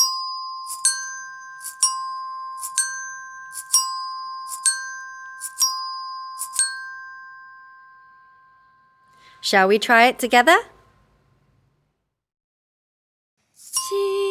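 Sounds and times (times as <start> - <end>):
bean-filled bottle shakers rattling: 0.0 - 6.8
resonator bells ringing: 0.0 - 10.4
speech: 9.5 - 10.7.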